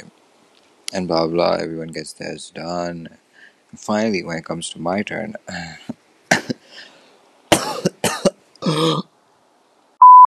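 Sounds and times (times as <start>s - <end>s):
speech: 1.0s - 5.9s
rough throat clearing: 5.5s - 6.9s, 7.5s - 9.1s
harsh coughing: 5.5s - 7.0s, 7.5s - 9.1s
short electronic beep: 10.0s - 10.3s.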